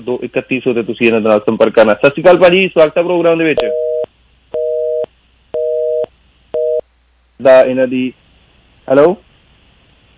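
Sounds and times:
speech: 0.0s - 3.8s, 7.4s - 8.2s, 8.9s - 9.3s
telephone busy signal after a dropped phone call: 3.6s - 6.8s.

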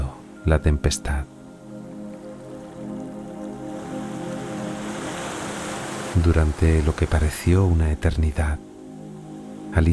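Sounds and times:
speech: 0.4s - 1.4s, 6.2s - 8.7s, 9.7s - 9.9s
waves breaking on a deserted beach: 2.2s - 7.5s.

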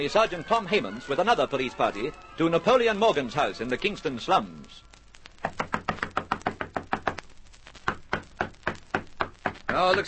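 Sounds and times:
speech: 0.0s - 5.0s, 9.8s - 10.0s
police party knocking on the wooden door of a house: 5.5s - 7.2s, 7.9s - 10.0s.

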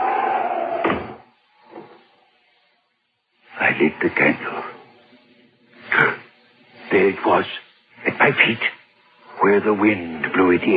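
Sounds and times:
steady rush: 0.0s - 10.7s
door closing with a thud: 0.8s - 1.9s
speech: 3.8s - 4.7s, 6.9s - 8.8s, 9.4s - 10.7s.

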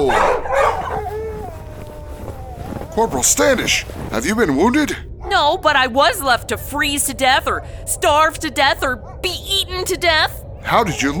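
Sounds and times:
husky sled dog barking and yipping: 0.0s - 3.3s
husky sled dog whining: 0.0s - 4.0s
speech: 3.0s - 11.1s.

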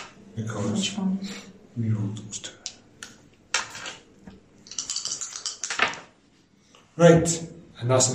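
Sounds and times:
speech: 0.4s - 2.6s, 7.0s - 8.1s
dice clattering onto a hard tabletop: 4.6s - 6.2s.

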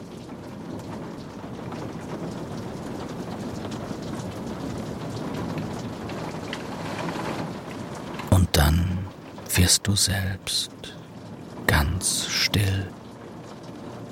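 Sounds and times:
steady rain falling: 0.0s - 14.0s
speech: 9.7s - 10.9s, 12.0s - 13.0s.

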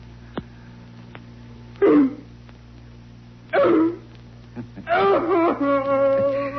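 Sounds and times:
low hum: 0.0s - 6.5s
person imitating a dog barking: 3.5s - 4.0s, 4.8s - 6.5s.

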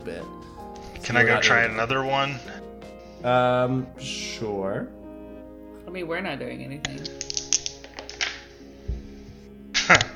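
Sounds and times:
speech: 0.0s - 5.0s, 5.9s - 7.2s
dice rolling on a table: 6.9s - 8.4s.

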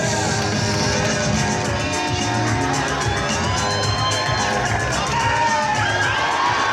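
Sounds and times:
large crowd cheering and whooping in a movie theater: 0.0s - 6.7s
excited shouts in a movie theater: 3.2s - 6.7s.

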